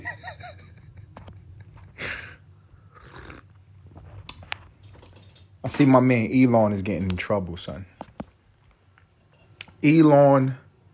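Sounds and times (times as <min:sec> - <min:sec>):
person slurping hot tea: 0:02.9 - 0:03.5
speech: 0:05.6 - 0:08.0, 0:09.8 - 0:10.6.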